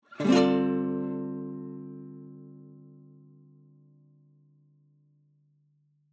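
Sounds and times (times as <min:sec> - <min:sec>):
guitar rasgueado strumming: 0:00.1 - 0:03.6.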